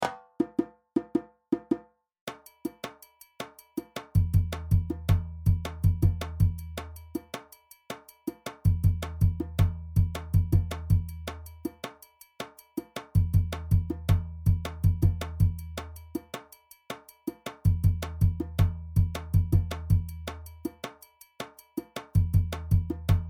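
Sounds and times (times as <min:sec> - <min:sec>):
doundoumba drum: 0:00.0 - 0:07.5, 0:08.2 - 0:11.9, 0:12.5 - 0:16.5, 0:17.2 - 0:21.0, 0:21.7 - 0:23.2
djembe drum: 0:00.0 - 0:23.2.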